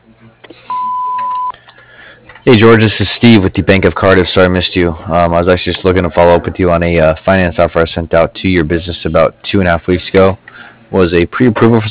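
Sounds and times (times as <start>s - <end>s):
voicemail beep on an answering machine: 0.7s - 1.6s
speech: 2.5s - 11.8s.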